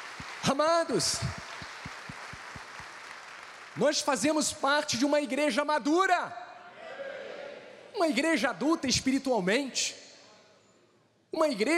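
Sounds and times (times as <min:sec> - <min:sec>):
crowd applauding: 0:00.0 - 0:04.3
speech: 0:00.4 - 0:01.5, 0:03.8 - 0:06.4, 0:08.0 - 0:10.0, 0:11.3 - 0:11.7.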